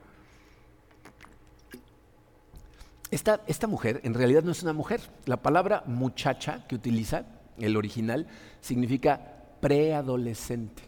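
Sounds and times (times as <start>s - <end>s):
speaker sipping and swallowing water: 0.9s - 2.0s
speech: 3.2s - 10.8s.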